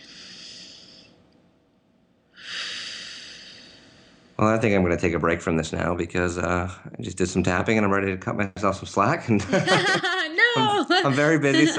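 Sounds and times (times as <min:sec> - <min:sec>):
deep breath taken during a relaxation exercise: 0:00.0 - 0:01.2, 0:02.3 - 0:04.4
speech: 0:04.4 - 0:11.7
laughter: 0:09.2 - 0:11.7.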